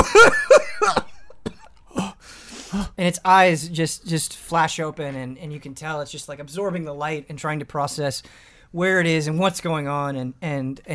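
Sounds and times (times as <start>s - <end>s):
person imitating a creature's raspy coughing: 0.0s - 2.2s
speech: 3.0s - 10.9s.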